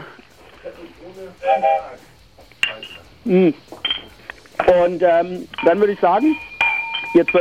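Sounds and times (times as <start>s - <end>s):
speech: 1.0s - 2.2s, 2.8s - 3.7s, 4.7s - 6.5s, 7.1s - 7.4s
sharp bright clink of glasses touching: 2.6s - 3.1s, 3.8s - 4.8s, 5.5s - 7.4s.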